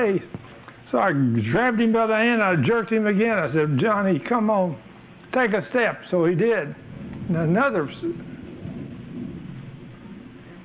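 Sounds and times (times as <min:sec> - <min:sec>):
speech: 0:00.0 - 0:08.3
airplane passing overhead: 0:06.4 - 0:10.6.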